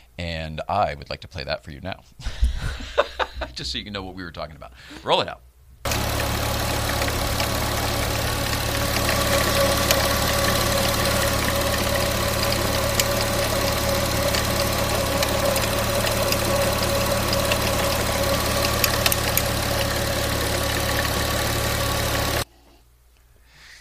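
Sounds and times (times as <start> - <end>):
speech: 0.2 - 3.0, 3.6 - 5.5
laughter: 2.3 - 3.6
loose metallic rattle of old air-cooled car engine: 5.9 - 22.4
old air-cooled yellow car engine idling: 5.9 - 22.4.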